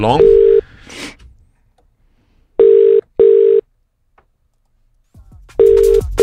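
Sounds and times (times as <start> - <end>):
speech: 0.0 - 0.4
outgoing phone call ringing tone in double bursts: 0.2 - 0.6, 2.6 - 3.6, 5.6 - 6.2.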